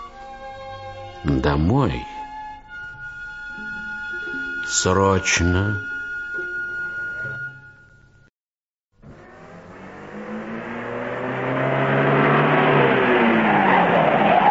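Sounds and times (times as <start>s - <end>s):
speech: 1.2s - 2.2s, 4.7s - 5.9s
car engine idling then revving as the car accelerates away: 9.0s - 14.5s.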